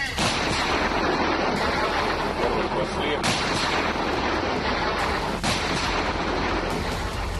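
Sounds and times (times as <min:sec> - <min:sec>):
artillery guns firing a salvo at enemy positions: 0:00.2 - 0:07.3.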